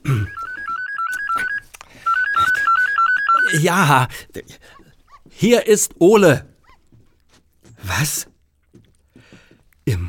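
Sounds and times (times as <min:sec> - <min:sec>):
mobile phone ringing with two-tone melody: 0:00.1 - 0:03.7
speech: 0:03.5 - 0:04.8, 0:05.4 - 0:06.5, 0:07.8 - 0:08.3.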